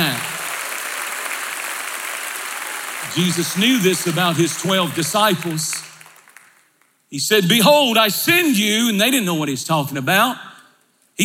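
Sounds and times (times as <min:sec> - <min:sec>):
large audience clapping hands: 0:00.0 - 0:07.0
speech: 0:03.1 - 0:05.9, 0:07.1 - 0:10.5.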